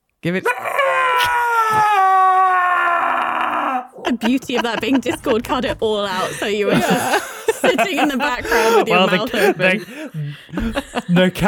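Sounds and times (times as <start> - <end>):
speech: 0.2 - 2.1, 4.1 - 11.4
loud sustained human scream: 0.4 - 4.0
laughter: 3.5 - 11.4
short breathy bursts: 6.1 - 7.6, 8.4 - 11.2.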